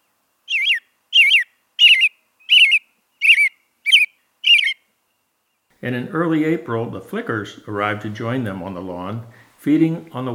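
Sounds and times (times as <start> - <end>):
American robin singing warbling whistled phrases: 0.0 - 5.7
speech: 5.8 - 10.3.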